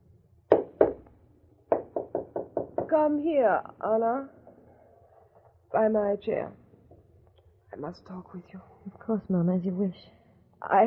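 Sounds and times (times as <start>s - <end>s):
walking cane rapping on a floor in sharp wooden knocks: 0.5s - 1.1s, 1.7s - 3.0s
speech: 2.9s - 4.4s, 5.7s - 6.6s, 7.8s - 10.8s.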